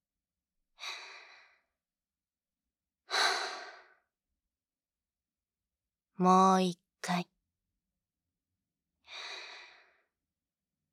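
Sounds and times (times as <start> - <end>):
deep paced breaths: 0.8 - 1.8, 3.1 - 4.1, 9.0 - 10.2
speech: 6.2 - 7.3.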